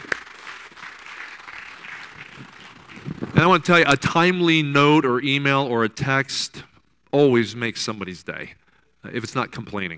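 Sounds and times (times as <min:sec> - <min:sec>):
church congregation applause: 0:00.0 - 0:03.4
speech: 0:03.4 - 0:09.9.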